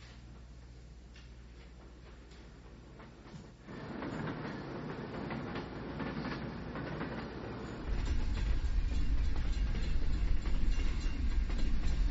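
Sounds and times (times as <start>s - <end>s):
faint rhythmic clatter of freight train: 1.1s - 12.0s
heavy runaway freight train rolling downhill on rails toward Lac Mégantic: 2.9s - 12.0s.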